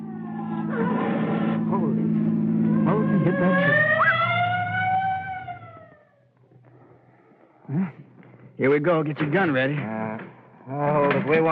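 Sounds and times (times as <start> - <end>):
stolen car engine roaring at high speed out of control: 0.0 - 6.7
speech: 7.7 - 10.0, 10.7 - 11.5.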